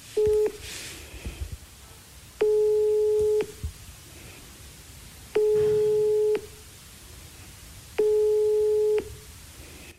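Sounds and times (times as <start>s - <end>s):
faint hiss: 0.0s - 9.9s
telephone ringback tone during an attempted phone call: 0.2s - 0.6s, 2.4s - 3.6s, 5.4s - 6.6s, 8.0s - 9.2s.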